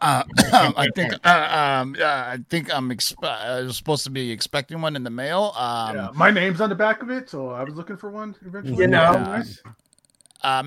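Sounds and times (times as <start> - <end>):
speech: 0.0 - 9.8, 10.4 - 10.6
voiced drawn-out mimicked coughs and throat clearing: 0.2 - 1.0
loud voice making a quick exclamation: 0.3 - 1.2, 8.7 - 9.6.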